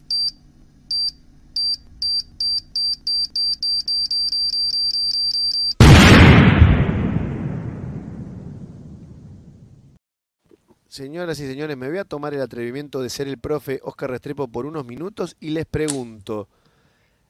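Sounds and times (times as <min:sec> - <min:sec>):
loud booming bomb explosion: 0:05.8 - 0:10.0
speech: 0:11.0 - 0:16.6.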